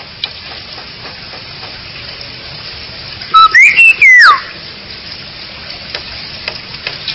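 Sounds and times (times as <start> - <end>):
Bali myna whistled call: 3.3 - 4.6.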